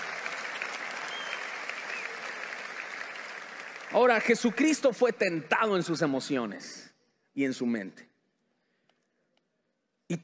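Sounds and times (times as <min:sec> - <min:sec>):
crowd clapping: 0:00.0 - 0:05.8
speech: 0:03.9 - 0:08.1.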